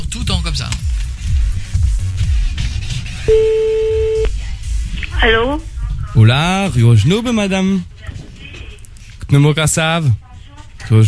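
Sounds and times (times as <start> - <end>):
noisy rustling: 0.5 - 11.0
telephone ringback tone while placing a call: 3.3 - 4.3
speech: 6.2 - 8.2, 9.3 - 10.2, 10.9 - 11.0.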